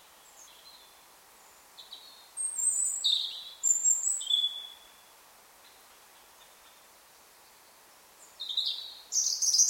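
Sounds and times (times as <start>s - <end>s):
European robin Erithacus rubecula song of high sweet notes and trills: 0.0s - 5.1s, 8.2s - 9.6s.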